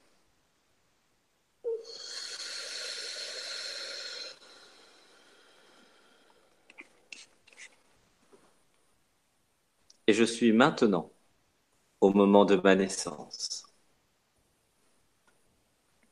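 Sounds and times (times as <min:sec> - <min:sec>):
deep breath drawn in and exhaled: 0:01.7 - 0:06.7
speech: 0:10.1 - 0:11.2, 0:12.0 - 0:13.6.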